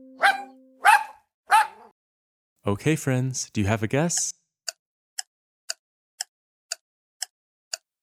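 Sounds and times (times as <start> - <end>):
dog barking: 0.2 - 1.9
speech: 2.6 - 4.4.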